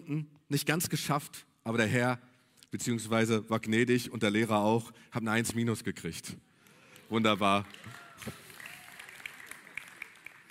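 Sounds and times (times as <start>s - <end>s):
speech: 0.1s - 6.5s, 7.1s - 8.4s
person clapping hands: 7.6s - 10.4s.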